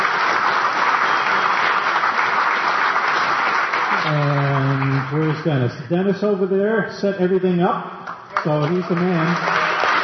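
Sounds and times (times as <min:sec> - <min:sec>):
applause from a crowd in a factory building: 0:00.0 - 0:05.5, 0:08.2 - 0:10.0
speech: 0:05.4 - 0:09.6.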